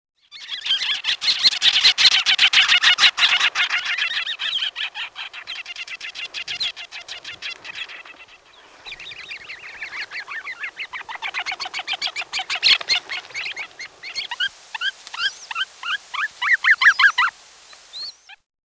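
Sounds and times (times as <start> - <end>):
bird chattering and whistling: 0.3 - 17.3.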